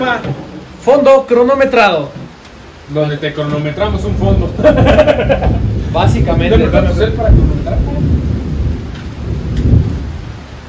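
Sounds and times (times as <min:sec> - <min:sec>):
speech: 0:00.0 - 0:02.2, 0:02.9 - 0:08.1
steady dense rain hissing: 0:00.0 - 0:10.6
deep booming rumbles: 0:03.5 - 0:10.6
laughter: 0:04.4 - 0:06.2.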